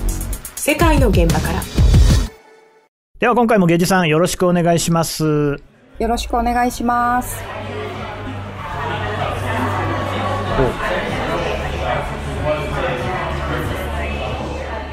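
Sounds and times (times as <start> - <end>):
music in a pub: 0.0 - 2.9, 7.3 - 14.9
speech: 0.7 - 2.0, 3.2 - 7.7
dense murmur of many overlapping conversations in a busy British pub: 5.7 - 14.9
voices rising from the pub crowd: 5.7 - 14.9.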